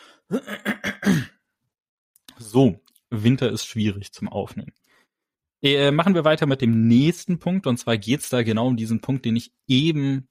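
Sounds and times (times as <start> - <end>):
speech: 0.3 - 0.7, 2.5 - 4.8, 5.6 - 10.2
person clearing throat: 0.3 - 1.4.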